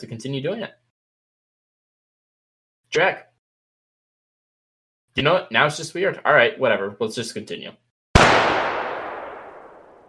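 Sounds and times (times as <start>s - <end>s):
speech: 0.0s - 0.8s, 2.9s - 3.3s, 5.2s - 7.8s
sniper rifle shot sound effect: 8.2s - 10.0s.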